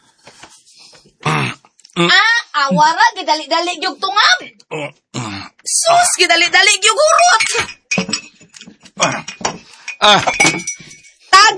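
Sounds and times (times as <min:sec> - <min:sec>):
speech: 0:02.0 - 0:05.0, 0:05.7 - 0:07.8, 0:09.0 - 0:09.3, 0:10.0 - 0:10.7
dropped drinking glass clattering: 0:07.2 - 0:11.2.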